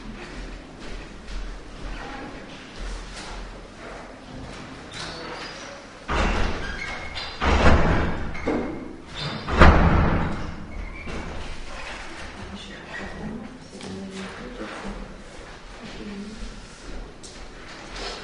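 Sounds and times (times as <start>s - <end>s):
door being closed: 4.9s - 12.3s.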